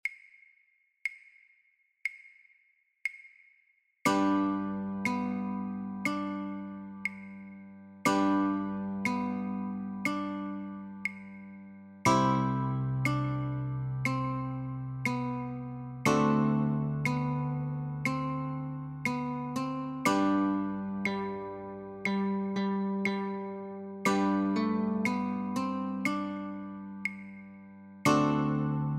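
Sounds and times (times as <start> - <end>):
guitar playing chords and notes of a children's song: 4.1 - 28.9.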